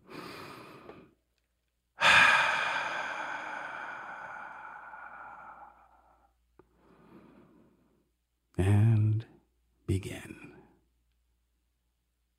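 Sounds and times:
person taking a deep breath: 0:00.0 - 0:01.2, 0:02.0 - 0:08.0.

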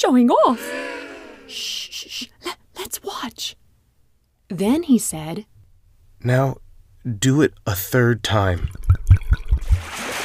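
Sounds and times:
speech: 0:00.0 - 0:00.9, 0:01.5 - 0:03.6, 0:04.5 - 0:05.5, 0:06.2 - 0:10.1
water glugging and pouring out of jars: 0:08.6 - 0:10.2.

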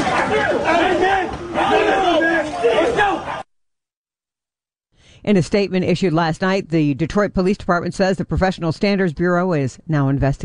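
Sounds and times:
bystanders screaming at police during arrest: 0:00.0 - 0:03.4
speech: 0:05.2 - 0:10.4.

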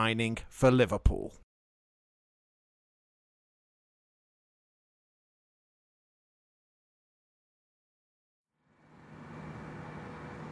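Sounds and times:
speech: 0:00.0 - 0:01.4
low engine hum: 0:08.6 - 0:10.4
street traffic at a bus stop: 0:08.6 - 0:10.4.

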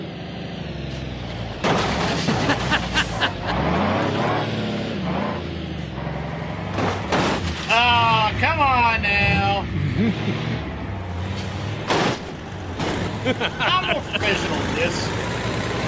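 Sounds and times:
heavy truck rumbling while delivering a load: 0:00.0 - 0:15.8
metallic clanks and bangs: 0:01.6 - 0:03.3, 0:06.7 - 0:07.8, 0:11.3 - 0:13.4
laughter: 0:02.2 - 0:03.7, 0:09.9 - 0:10.5, 0:13.2 - 0:14.7
speech: 0:10.0 - 0:10.5, 0:13.3 - 0:15.2.

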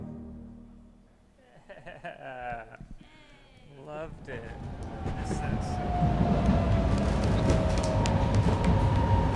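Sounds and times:
laughter: 0:01.4 - 0:03.0
commuter train rumbling: 0:03.9 - 0:09.3.

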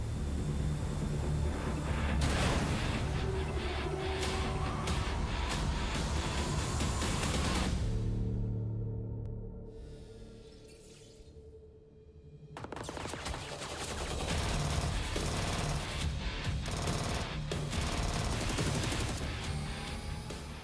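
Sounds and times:
frantic music of a mobile game trailer: 0:00.2 - 0:09.0, 0:12.5 - 0:20.6
bursts of gunfire in a mobile game trailer: 0:12.6 - 0:19.8.

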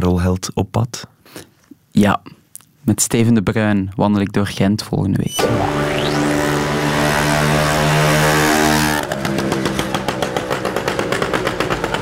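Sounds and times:
speech: 0:00.0 - 0:06.2
motor engine humming and puttering: 0:05.4 - 0:12.0.

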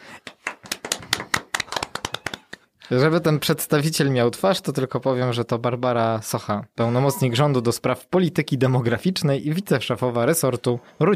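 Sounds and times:
sharp handclaps: 0:00.2 - 0:02.7
speech: 0:02.9 - 0:11.1.

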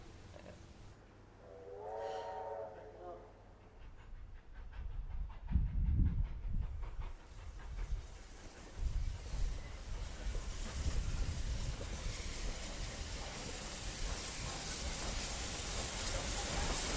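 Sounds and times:
steam train whistle: 0:01.4 - 0:03.6
steam train rumbling along rails with heavy rhythmic chuffing: 0:01.8 - 0:16.9.

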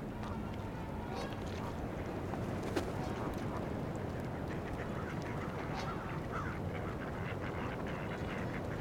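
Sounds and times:
noise: 0:00.0 - 0:08.7
ducks quacking: 0:03.2 - 0:08.7.

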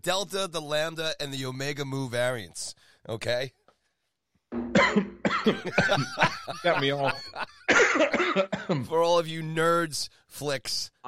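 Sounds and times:
speech: 0:00.0 - 0:03.6, 0:04.5 - 0:11.0
harsh coughing after choking on a drink: 0:04.7 - 0:06.3, 0:07.5 - 0:08.9
laughter: 0:05.5 - 0:08.2.

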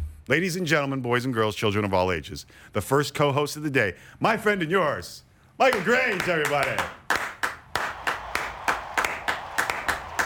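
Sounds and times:
speech: 0:00.3 - 0:07.0
three people clapping: 0:05.6 - 0:10.2.

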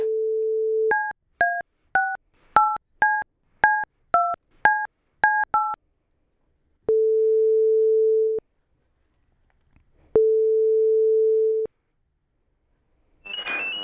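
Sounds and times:
telephone dial tone: 0:00.0 - 0:01.1, 0:06.9 - 0:08.4, 0:10.2 - 0:11.7
telephone keypad dialing beeps: 0:00.9 - 0:05.8
ringback tones of an outgoing phone call: 0:13.3 - 0:13.8.

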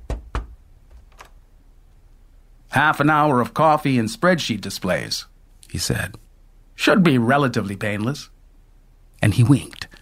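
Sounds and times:
knuckles rapping on a door: 0:00.0 - 0:01.4
speech: 0:02.8 - 0:06.2, 0:06.8 - 0:08.3, 0:09.2 - 0:10.0.

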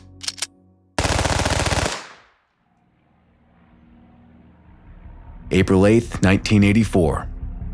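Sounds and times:
MAC-10 submachine gun firing: 0:01.0 - 0:02.4
speech: 0:05.5 - 0:07.3.

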